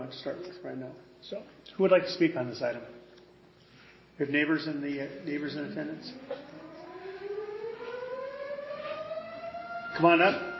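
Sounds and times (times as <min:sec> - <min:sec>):
speech: 0:00.1 - 0:03.0, 0:04.2 - 0:06.5, 0:10.0 - 0:10.5
civil defense siren wailing: 0:05.0 - 0:10.5.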